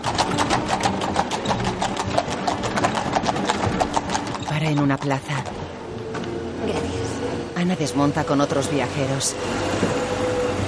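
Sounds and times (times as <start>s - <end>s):
horse hooves clip-clopping pulling a carriage through a village: 0.0s - 6.3s
carriage wheels rattling: 0.0s - 10.6s
speech: 4.7s - 5.5s, 7.6s - 10.0s.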